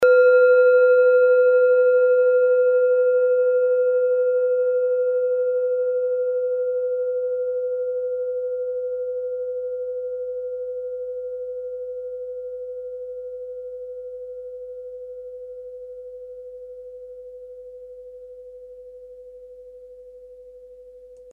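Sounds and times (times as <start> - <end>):
small handmade planet-tuned singing bowl ringing: 0.0 - 14.6.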